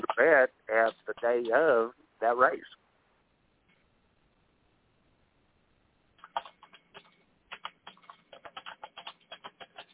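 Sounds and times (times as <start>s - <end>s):
speech: 0.2s - 2.8s
typing on a computer keyboard: 6.2s - 9.9s.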